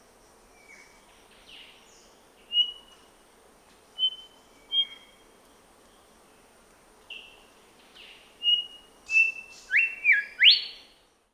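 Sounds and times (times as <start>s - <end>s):
grey whistler call in Papua New Guinea: 8.4s - 10.8s.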